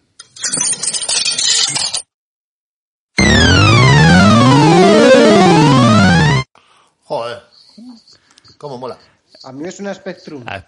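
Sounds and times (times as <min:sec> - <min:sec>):
coins clattering and clinking into an arcade machine: 0:00.4 - 0:02.0
arcade machine electronic jingle of synthesized tones: 0:03.2 - 0:06.5
speech: 0:08.6 - 0:10.6.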